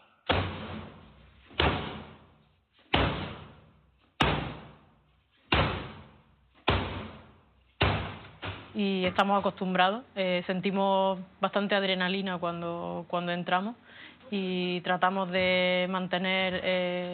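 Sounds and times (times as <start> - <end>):
heavy blows against an apartment door by police forcing it open: 0.3 - 2.3, 2.9 - 4.9, 5.5 - 8.8
speech: 8.8 - 17.1.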